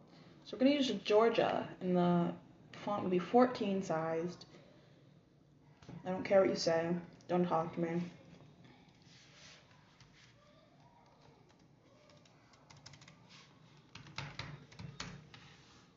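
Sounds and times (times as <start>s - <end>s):
speech: 0.5s - 4.5s, 6.0s - 8.2s
aggressive typing on a computer keyboard: 11.2s - 15.4s.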